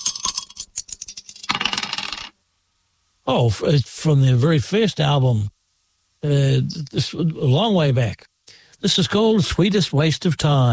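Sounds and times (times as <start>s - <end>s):
dice clattering and tumbling across a hard surface: 0.0s - 2.3s
speech: 3.2s - 5.6s, 6.2s - 10.7s.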